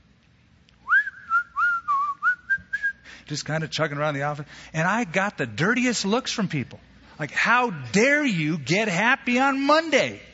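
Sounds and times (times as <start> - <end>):
person whistling a bright bouncy tune: 0.9 - 3.1
speech: 3.3 - 10.3.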